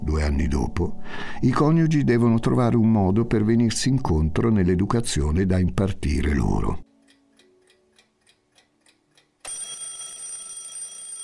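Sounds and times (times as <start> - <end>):
speech: 0.1 - 6.9
clock ticking: 6.2 - 10.0
alarm clock ringing with a loud continuous metallic ring: 9.4 - 11.2.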